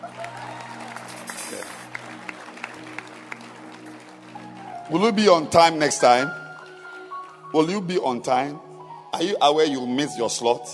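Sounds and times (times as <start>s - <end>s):
audience clapping at a festive gathering: 0.0s - 8.2s
speech: 4.9s - 6.4s, 7.5s - 10.7s.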